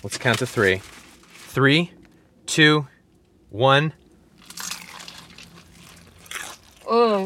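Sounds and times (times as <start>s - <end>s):
speech: 0.0s - 2.9s, 3.5s - 4.0s
crunching bite into crispy fried chicken: 4.4s - 6.9s.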